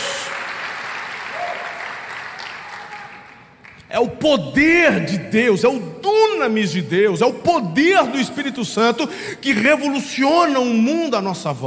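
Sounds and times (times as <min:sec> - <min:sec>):
audience applauding: 0:00.0 - 0:03.9
speech: 0:03.9 - 0:11.6.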